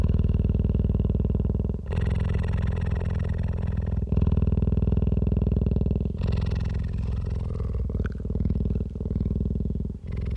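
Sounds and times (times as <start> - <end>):
adult cheetah purring: 0.0 - 10.3.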